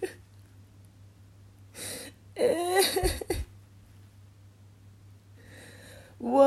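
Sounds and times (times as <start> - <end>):
woman crying and sniffling: 1.8 - 3.5.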